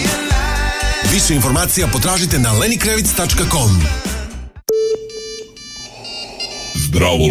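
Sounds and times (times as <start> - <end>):
speech: 1.1 - 4.1, 7.0 - 7.2
incoming video call ringtone electronic chime: 4.7 - 7.0.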